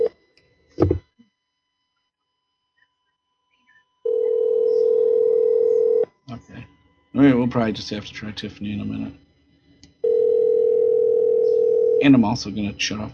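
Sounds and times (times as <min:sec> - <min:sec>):
buzzy ringback tone of a call to a cell phone in Japan: 0:04.0 - 0:06.1, 0:10.0 - 0:12.2
speech: 0:07.2 - 0:09.2, 0:12.0 - 0:13.1.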